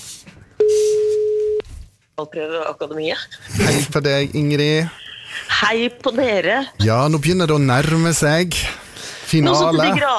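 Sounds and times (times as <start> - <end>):
telephone call tone on a phone line: 0.6 - 1.6
speech: 2.2 - 10.1.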